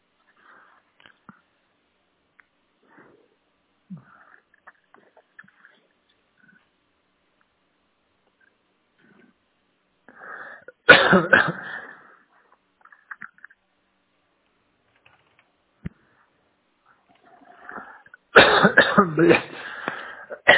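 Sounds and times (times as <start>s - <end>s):
man coughing: 10.7s - 12.0s, 18.4s - 20.5s
man clearing throat: 10.8s - 11.8s, 18.4s - 20.5s
speech: 11.1s - 11.6s.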